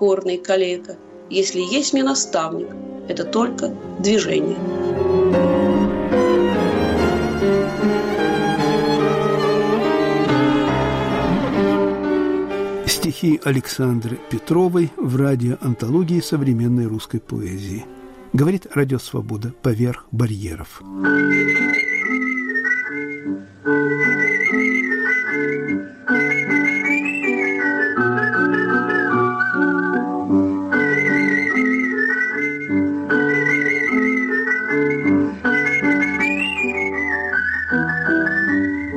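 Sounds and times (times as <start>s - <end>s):
speech: 0.0s - 5.0s, 13.1s - 21.9s
instrumental accompaniment: 0.0s - 38.9s
person whistling a melody artistically: 20.9s - 38.9s.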